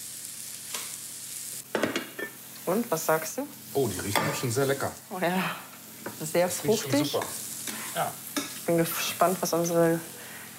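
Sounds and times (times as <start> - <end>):
food frying slowly in an oiled pan: 0.0 - 10.5
speech: 2.7 - 7.4, 8.0 - 10.5.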